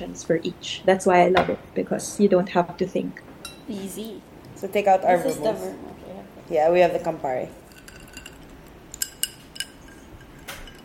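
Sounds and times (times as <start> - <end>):
speech: 0.0 - 7.6
ice cubes clinking against a glass while a Negroni cocktail is mixed: 7.6 - 10.8.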